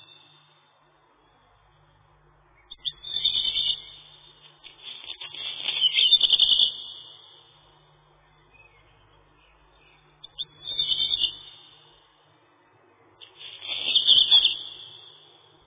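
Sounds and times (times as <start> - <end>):
Black redstart Phoenicurus ochruros singing grating crackly phrases: 2.6 - 7.5, 8.2 - 12.0, 13.3 - 15.4.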